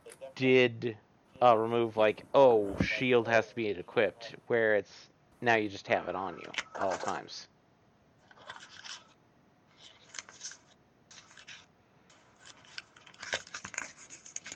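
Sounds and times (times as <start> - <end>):
speech: 0.3 - 7.5
paper crinkling: 8.2 - 14.5.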